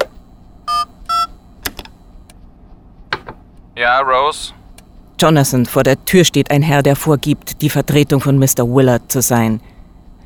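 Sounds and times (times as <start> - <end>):
touch-tone beeps of an internal telephone number being dialed: 0.7 - 1.4
speech: 3.8 - 4.6, 5.2 - 9.7.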